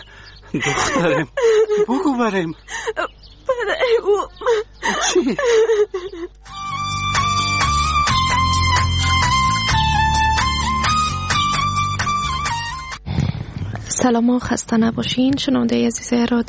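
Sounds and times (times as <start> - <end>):
laughter: 0.0 - 6.4
speech: 0.5 - 6.4, 14.0 - 16.4
girl crying and whimpering: 2.7 - 6.4
steady music: 6.4 - 13.0.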